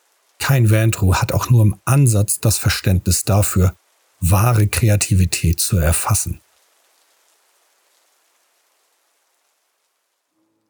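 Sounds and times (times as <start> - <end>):
soft rain pattering: 0.0 - 1.6, 3.6 - 4.6, 5.2 - 10.6
speech: 0.5 - 6.4.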